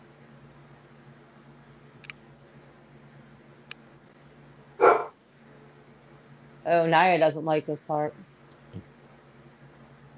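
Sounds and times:
low steady hum: 0:00.0 - 0:10.1
dog barking in a movie scene: 0:04.8 - 0:05.2
speech: 0:06.6 - 0:08.3.

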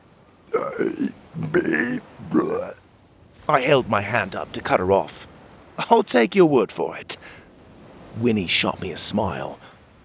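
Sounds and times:
drawn-out pitched burps of a person burping a song: 0:00.5 - 0:02.8
speech: 0:00.6 - 0:02.8, 0:03.5 - 0:07.4, 0:08.2 - 0:09.7.

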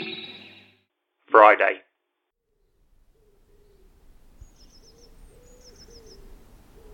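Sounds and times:
speech: 0:01.6 - 0:01.8
distant wood pigeon cooing: 0:02.6 - 0:06.9
small birds twittering faintly: 0:02.6 - 0:06.9.

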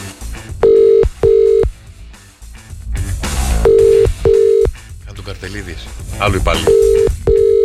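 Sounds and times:
phone line ringback tone: 0:00.6 - 0:01.7, 0:03.6 - 0:04.7, 0:06.6 - 0:07.6
speech: 0:05.4 - 0:07.1.

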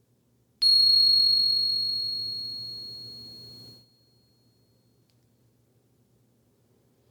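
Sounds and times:
meditation bell ringing: 0:00.6 - 0:03.8.

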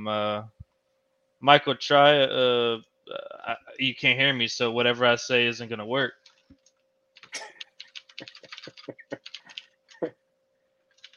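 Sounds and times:
speech: 0:00.0 - 0:00.6, 0:01.4 - 0:06.6
low steady hum: 0:00.0 - 0:11.1
typing a chat message on a computer keyboard: 0:06.2 - 0:10.1, 0:10.9 - 0:11.1.

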